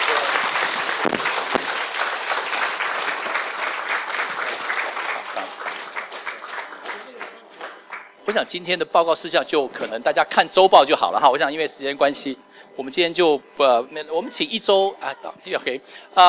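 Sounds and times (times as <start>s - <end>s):
congregation applauding: 0.0s - 8.2s
speech: 8.3s - 16.2s.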